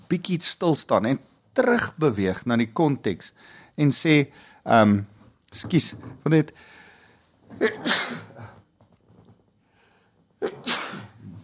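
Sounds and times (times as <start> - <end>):
speech: 0.1 - 6.8, 7.5 - 8.5, 10.4 - 10.8
person sneezing during a sermon: 7.5 - 8.6, 10.4 - 11.4.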